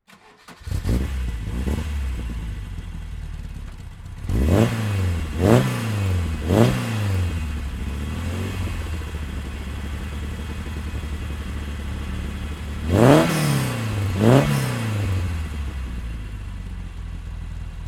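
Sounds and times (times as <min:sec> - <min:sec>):
1979 Ford Escort RS 2000 Mk2 engine: 0:00.1 - 0:17.8.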